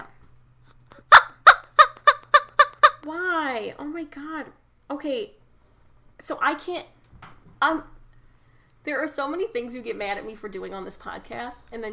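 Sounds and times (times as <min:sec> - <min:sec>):
squeaky rubber chicken toy being squeezed: 0:00.9 - 0:03.0
speech: 0:03.6 - 0:05.4, 0:06.2 - 0:07.0, 0:07.6 - 0:07.9, 0:08.8 - 0:11.9.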